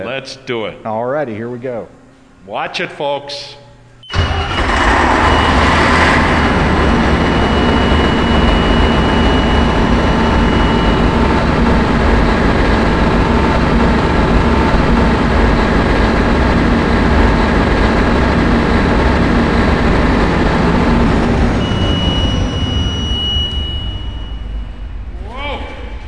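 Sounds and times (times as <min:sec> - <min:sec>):
speech: 0:00.0 - 0:03.6
large turbocharged 400 horsepower engine cranking and starting: 0:04.1 - 0:08.5
large turbocharged engine deep rumbling idle with faint high whine: 0:04.1 - 0:26.0.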